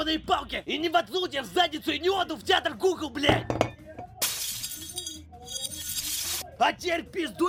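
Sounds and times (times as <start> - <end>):
speech: 0.0 - 3.8, 6.6 - 7.4
drinking glass shattering: 3.4 - 6.4
falling drinking glass shards tinkling: 4.2 - 6.4.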